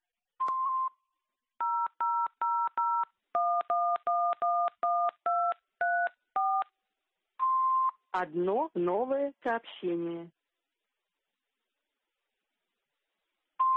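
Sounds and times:
touch-tone dialing beeps: 1.6 - 6.7, 7.4 - 8.0
speech: 8.2 - 10.4.

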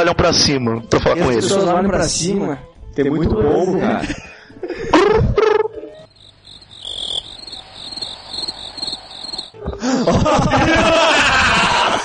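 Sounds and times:
speech: 0.0 - 4.3, 9.9 - 11.2
laughter: 4.0 - 5.7, 9.7 - 12.0
crickets chirping: 5.9 - 10.2.

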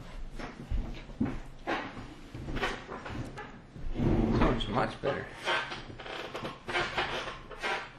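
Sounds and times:
chair squeaking and creaking as someone shifts their weight: 1.6 - 7.9
speech: 4.7 - 5.7.

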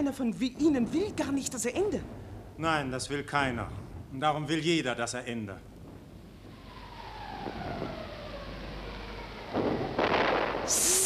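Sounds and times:
speech: 0.0 - 5.7, 10.7 - 10.9
shrapnel shell exploding in wartime: 9.5 - 11.0.

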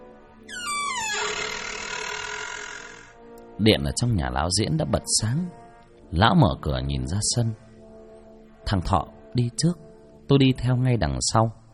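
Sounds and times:
dry unoiled gate hinge creaking as gate opens: 0.5 - 3.2
speech: 3.6 - 7.7, 8.7 - 11.6.

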